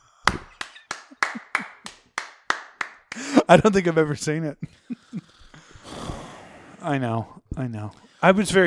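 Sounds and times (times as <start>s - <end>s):
hand clapping: 0.3s - 3.4s
laughter: 0.9s - 2.0s, 3.1s - 5.4s
speech: 3.5s - 4.9s, 6.8s - 8.6s.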